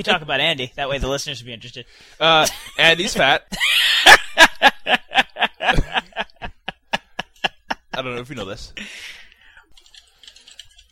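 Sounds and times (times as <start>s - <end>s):
speech: 0.0s - 6.0s, 8.0s - 9.2s
laughter: 3.5s - 8.0s
rapid USB computer keyboard typing: 9.6s - 10.9s.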